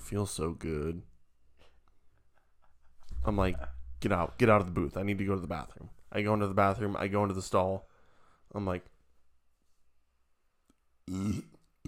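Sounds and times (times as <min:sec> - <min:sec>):
speech: 0:00.1 - 0:01.1, 0:03.2 - 0:07.9, 0:08.5 - 0:08.9, 0:11.1 - 0:11.8
loud low guttural belch: 0:11.1 - 0:11.8.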